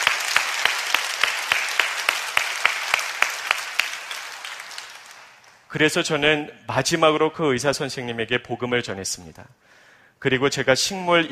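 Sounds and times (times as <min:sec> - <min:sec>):
crowd clapping: 0:00.0 - 0:05.7
speech: 0:05.7 - 0:11.2.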